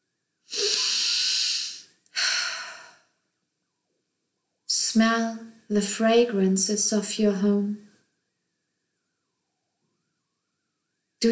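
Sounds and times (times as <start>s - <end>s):
deep breath in during a guided breathing exercise: 0.5s - 3.1s
speech: 5.0s - 7.9s.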